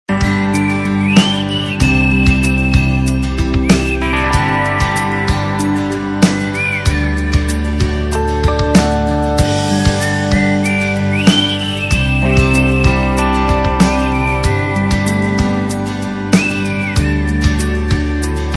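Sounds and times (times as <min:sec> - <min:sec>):
whistle ringtone: 0:00.2 - 0:08.5, 0:09.6 - 0:18.5.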